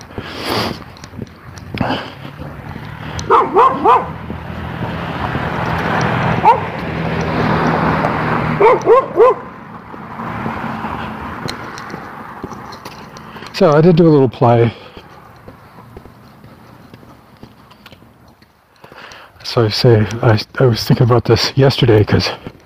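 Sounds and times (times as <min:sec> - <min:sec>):
steady traffic-like hum: 0:00.0 - 0:22.6
speech: 0:01.8 - 0:02.1, 0:03.8 - 0:04.2, 0:13.6 - 0:14.8, 0:19.6 - 0:22.5
red dog barking behind a fence: 0:03.2 - 0:04.2, 0:06.4 - 0:06.8, 0:08.6 - 0:09.5.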